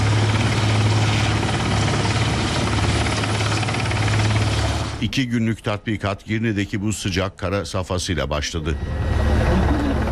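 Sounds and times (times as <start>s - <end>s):
search-and-rescue helicopter rotor and engine drone during a rescue exercise: 0.0s - 5.2s, 8.4s - 10.1s
speech: 5.0s - 9.2s.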